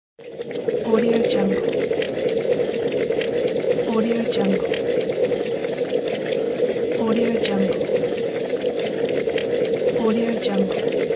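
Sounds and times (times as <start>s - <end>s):
boiling water: 0.2s - 11.1s.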